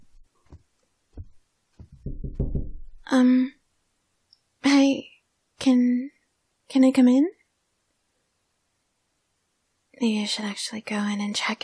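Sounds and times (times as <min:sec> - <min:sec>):
knocking on a door: 0:01.2 - 0:03.1
speech: 0:03.1 - 0:03.6, 0:04.8 - 0:06.1, 0:06.7 - 0:07.4, 0:10.0 - 0:11.6.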